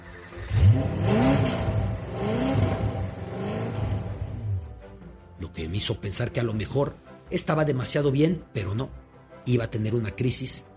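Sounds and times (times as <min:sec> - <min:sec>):
Porsche sports car engine revving at a house in a suburb of Liège: 0:00.3 - 0:04.8
speech: 0:05.6 - 0:10.7.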